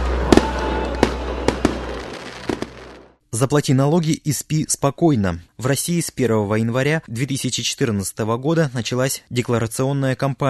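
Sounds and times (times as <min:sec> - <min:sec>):
fireworks bursting at a distance: 0:00.0 - 0:03.2
speech: 0:03.3 - 0:10.4.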